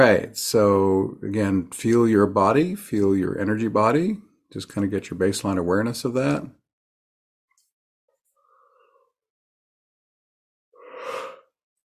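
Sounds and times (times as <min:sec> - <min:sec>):
speech: 0:00.0 - 0:06.6
person yawning: 0:10.8 - 0:11.5.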